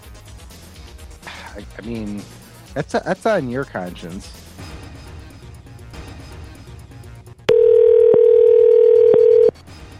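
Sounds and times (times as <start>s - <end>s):
speech: 1.6s - 4.4s
telephone dial tone: 7.5s - 9.5s.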